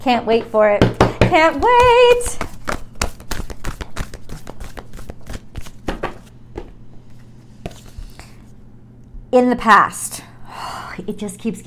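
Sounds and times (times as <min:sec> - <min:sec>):
speech: 0:00.0 - 0:02.5, 0:09.3 - 0:10.2, 0:11.0 - 0:11.6
moon card deck being shuffled and drawn: 0:01.8 - 0:06.3.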